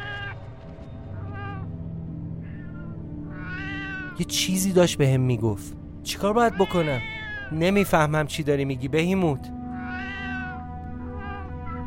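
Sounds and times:
cat meowing: 0:00.0 - 0:00.4, 0:01.2 - 0:01.6, 0:02.4 - 0:04.2, 0:06.4 - 0:07.5, 0:09.8 - 0:11.8
speech: 0:04.2 - 0:09.5.

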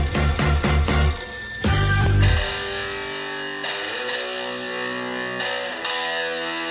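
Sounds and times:
telephone ringing in trilling electronic pulses: 0:00.0 - 0:03.4
sustained heavily processed musical tone: 0:00.0 - 0:06.6.

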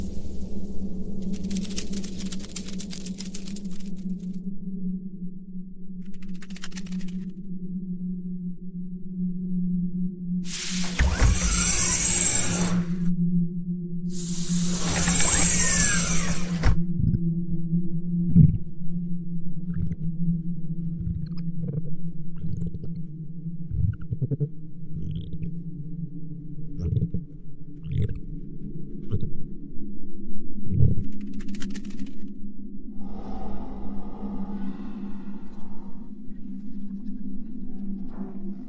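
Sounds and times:
exoplanet ambience low hum with droning tone: 0:00.0 - 0:38.6
brief hiss: 0:10.5 - 0:12.8.

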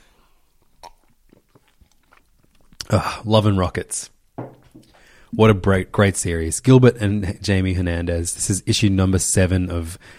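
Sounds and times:
person gulping water: 0:00.5 - 0:03.1
mouth clicks and smacks: 0:00.6 - 0:03.0
speech: 0:02.9 - 0:04.2, 0:05.3 - 0:10.1.

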